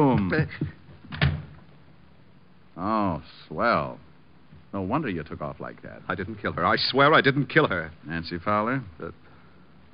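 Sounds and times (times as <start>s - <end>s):
speech: 0.0s - 0.8s, 2.8s - 4.1s, 4.7s - 9.2s
door swinging shut with latch rattle and dull thud: 1.0s - 1.7s.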